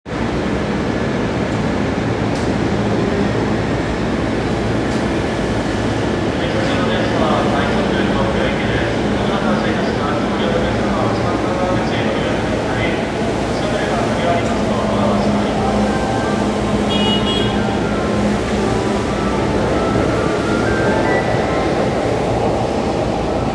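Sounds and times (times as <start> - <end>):
Chuo Line Rapid train sounds at Nakano-higashi: 0.1 - 23.5.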